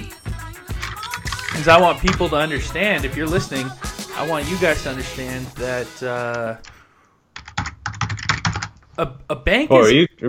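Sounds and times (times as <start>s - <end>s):
speech: 1.6s - 6.7s, 9.0s - 10.2s
aggressive typing on a computer keyboard: 7.4s - 8.8s.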